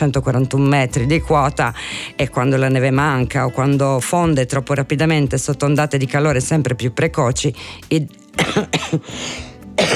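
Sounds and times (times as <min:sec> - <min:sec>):
speech: 0:00.0 - 0:09.9
harsh coughing: 0:08.4 - 0:09.9.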